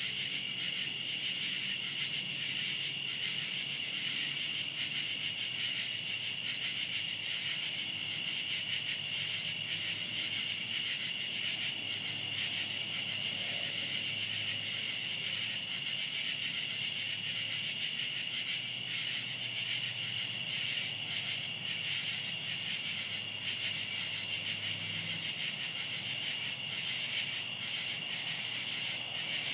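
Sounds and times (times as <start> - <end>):
cicadas buzzing at night: 0.2 - 29.5.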